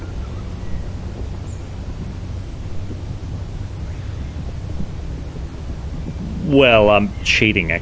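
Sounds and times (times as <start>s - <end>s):
low rumbling undertone: 0.0s - 7.7s
soft outdoor hush at rural cottages: 0.0s - 7.7s
speech: 6.5s - 7.7s.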